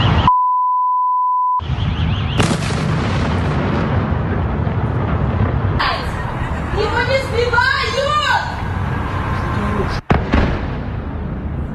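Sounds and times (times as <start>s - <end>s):
short electronic beep: 0.0s - 1.6s
heavy explosions booming during a missile attack on a city: 1.6s - 7.8s, 10.0s - 11.7s
loud rushing noise: 1.6s - 11.7s.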